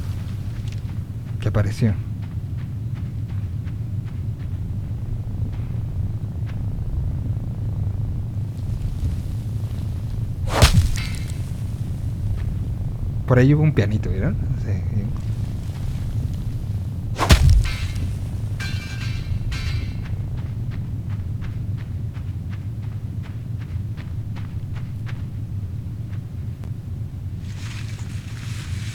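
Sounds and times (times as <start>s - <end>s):
low constant rumble: 0.0s - 28.9s
speech: 1.4s - 2.1s, 13.3s - 15.5s
heavy metal bear trap clank: 17.2s - 20.1s.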